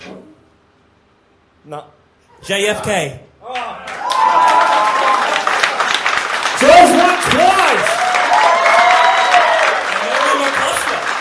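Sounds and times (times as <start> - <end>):
speech: 1.6 - 4.5
audience applause: 3.6 - 11.2.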